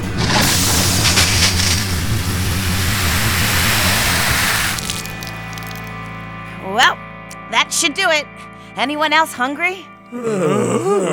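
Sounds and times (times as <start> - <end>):
water splashed from a bucket hissing on a fire at a radioactive uranium core: 0.1 - 5.9
speech: 7.8 - 11.1.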